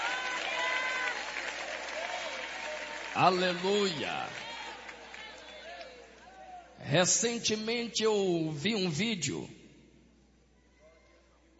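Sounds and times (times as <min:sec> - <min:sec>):
audience applauding and cheering: 0:00.0 - 0:06.7
speech: 0:03.2 - 0:04.4, 0:06.8 - 0:09.6.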